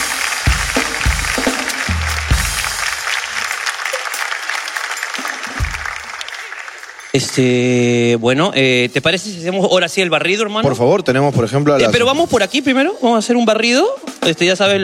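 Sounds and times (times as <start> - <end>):
live audience applause: 0.0 - 7.5
speech: 7.2 - 14.8.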